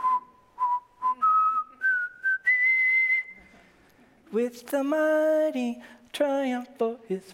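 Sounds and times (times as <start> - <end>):
person whistling a short melody: 0.0 - 3.5
speech: 4.3 - 7.3.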